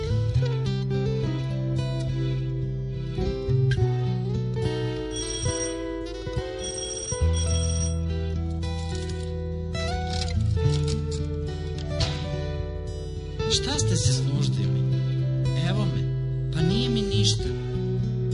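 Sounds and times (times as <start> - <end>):
sustained musical backdrop with low droning tones: 0.0 - 18.3
telephone ringing: 5.0 - 8.1.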